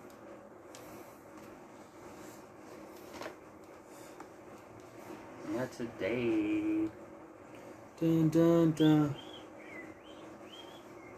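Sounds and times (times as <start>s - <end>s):
speech: 5.5s - 7.0s, 8.0s - 9.2s
thin sliding bird whistles: 9.1s - 11.1s.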